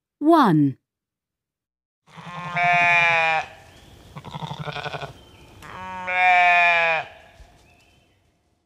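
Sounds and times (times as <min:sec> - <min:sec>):
speech: 0:00.2 - 0:00.8
sheep bleating: 0:02.1 - 0:03.6, 0:04.2 - 0:07.4.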